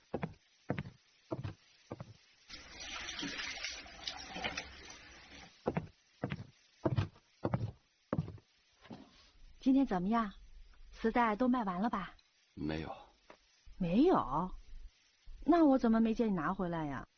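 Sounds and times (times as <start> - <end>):
tap water running over hands being washed: 0.0 - 6.4
speech: 9.7 - 10.4, 11.0 - 13.0, 13.8 - 14.6, 15.4 - 17.1.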